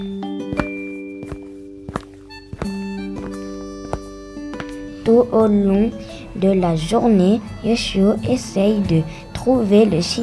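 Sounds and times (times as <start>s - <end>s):
boots thudding on a floor: 0.0s - 5.0s
speech: 5.1s - 10.2s.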